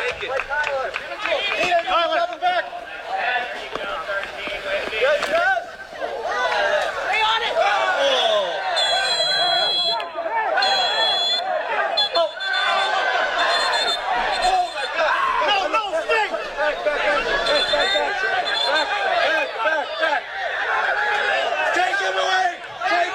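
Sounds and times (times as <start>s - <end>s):
soccer fans yelling in the stands: 0.0s - 23.1s
brief shrill whistling tone: 8.0s - 10.0s, 10.6s - 15.0s, 17.3s - 19.1s
laughter: 8.4s - 23.1s.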